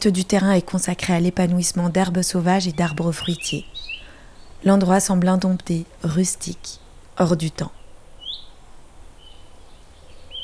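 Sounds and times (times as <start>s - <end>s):
speech: 0.0s - 4.0s, 4.6s - 7.8s
faint calm outdoor hush: 0.0s - 10.4s
small birds chirping outdoors: 0.0s - 10.4s.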